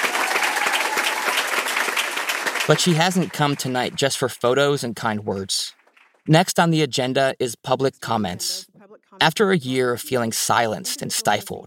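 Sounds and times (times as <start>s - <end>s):
audience applause at a school board meeting: 0.0s - 4.4s
speech: 2.7s - 11.6s.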